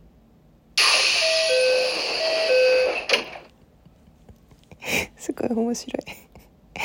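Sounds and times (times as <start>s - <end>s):
loud pneumatic hiss of train door: 0.8s - 3.4s
two-note ding-dong train door closing chime: 1.2s - 3.2s
speech: 5.5s - 6.2s.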